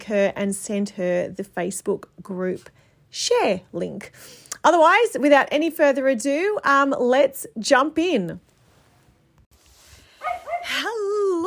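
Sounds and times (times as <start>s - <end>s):
speech: 0.1s - 8.5s, 10.2s - 11.4s
dog barking: 10.2s - 10.8s.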